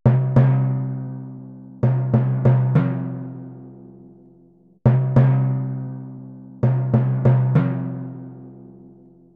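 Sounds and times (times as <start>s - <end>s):
timpani in C minor: 0.1s - 3.7s, 4.9s - 8.5s.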